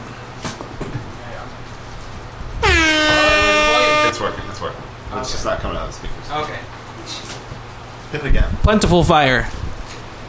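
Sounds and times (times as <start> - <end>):
air horn sound effect blast: 2.6 - 4.8
speech: 4.3 - 7.4, 8.1 - 9.6.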